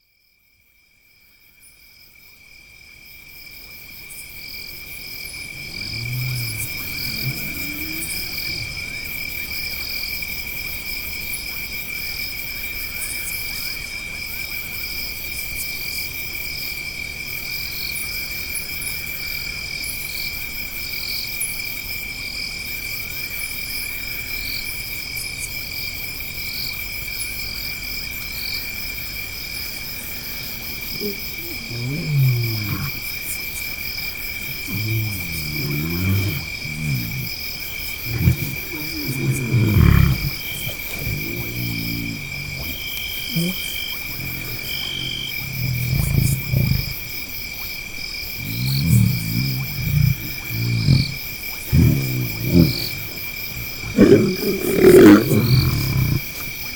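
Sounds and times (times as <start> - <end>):
lion vocalizing: 4.8 - 10.0, 30.0 - 56.6.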